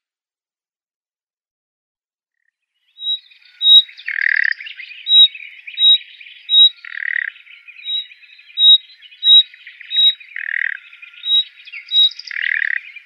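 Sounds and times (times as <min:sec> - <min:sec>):
Common Nightingale calls: 0:02.9 - 0:13.0.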